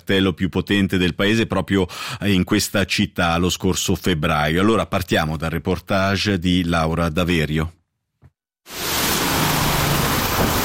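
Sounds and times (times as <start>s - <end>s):
speech: 0.0s - 7.8s, 8.7s - 8.9s
heavy rain pouring: 8.7s - 10.6s.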